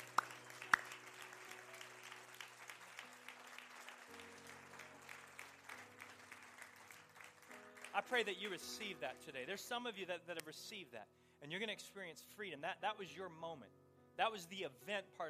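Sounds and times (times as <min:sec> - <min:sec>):
sharp loud claps: 0:00.0 - 0:08.2
audience applause after a prayer: 0:00.0 - 0:08.4
speech: 0:08.0 - 0:15.2.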